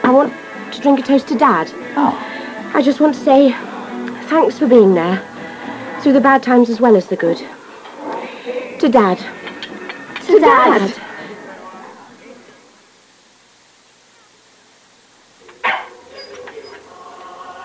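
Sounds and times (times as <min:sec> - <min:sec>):
room noise: 0:00.0 - 0:17.6
speech: 0:00.1 - 0:03.7, 0:04.3 - 0:05.3, 0:06.0 - 0:07.6, 0:08.5 - 0:09.4, 0:10.3 - 0:11.1
dog barking: 0:15.6 - 0:16.8.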